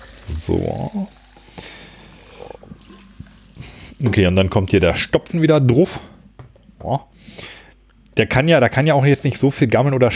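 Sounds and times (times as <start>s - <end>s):
home-carbonated sparkling water poured into a drinking bottle: 0.0s - 4.0s
speech: 0.3s - 1.2s, 4.0s - 6.1s, 6.8s - 7.4s, 8.2s - 10.1s.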